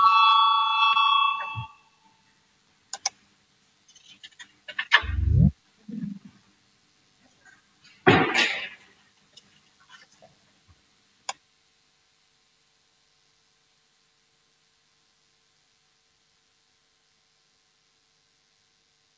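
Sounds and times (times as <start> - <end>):
parliamentary voting bell electronic tone: 0.0 - 1.8
low thump: 5.0 - 5.5.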